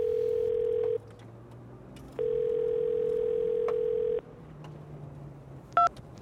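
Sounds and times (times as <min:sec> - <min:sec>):
electronic ringback tone of a phone line ringing out: 0:00.0 - 0:01.0, 0:02.2 - 0:04.2.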